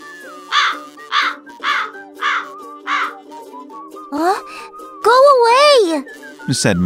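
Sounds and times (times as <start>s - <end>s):
crows cawing: 0.5s - 3.2s
speech: 4.1s - 6.8s.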